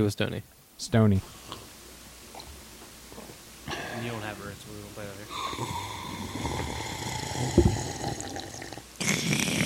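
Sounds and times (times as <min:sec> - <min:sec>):
speech: 0:00.0 - 0:01.5, 0:04.0 - 0:06.5
steady airy hiss: 0:00.0 - 0:09.6
person drinking fractalized water: 0:02.3 - 0:02.6, 0:05.3 - 0:09.6
low gulp: 0:05.4 - 0:09.6.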